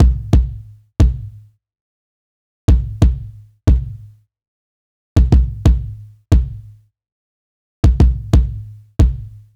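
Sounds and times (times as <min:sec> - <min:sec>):
jazz kick drum: 0:00.0 - 0:01.5, 0:02.7 - 0:04.1, 0:05.2 - 0:06.8, 0:07.8 - 0:09.5.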